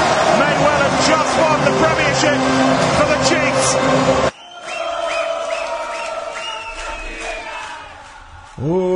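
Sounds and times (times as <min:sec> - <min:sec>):
rugby fans chanting in unison in a large stadium: 0:00.0 - 0:08.8.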